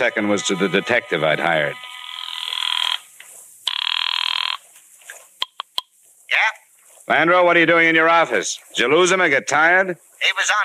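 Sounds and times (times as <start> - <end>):
speech: 0.0 - 1.9, 7.1 - 10.6
telephone ringing: 0.0 - 3.1, 3.7 - 4.6
sharp clicks: 5.4 - 5.9.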